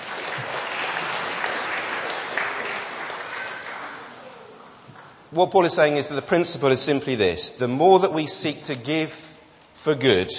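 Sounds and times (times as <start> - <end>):
audience applause from many hands: 0.0 - 5.1
speech: 5.3 - 10.3.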